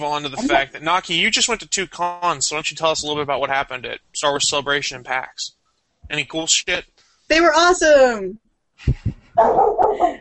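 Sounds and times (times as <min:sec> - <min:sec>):
speech: 0:00.0 - 0:10.1
dog barking and yelping: 0:09.4 - 0:10.1.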